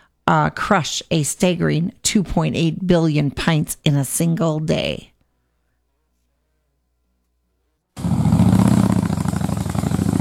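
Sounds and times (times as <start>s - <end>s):
speech: 0.3s - 5.1s
motorcycle engine starting and revving: 8.0s - 10.1s.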